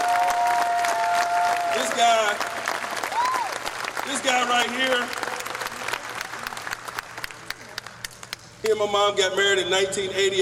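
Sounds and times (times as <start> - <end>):
people cheering: 0.0 - 6.7
crowd applauding: 0.0 - 8.5
speech: 2.0 - 2.5, 4.1 - 5.2, 8.6 - 10.4.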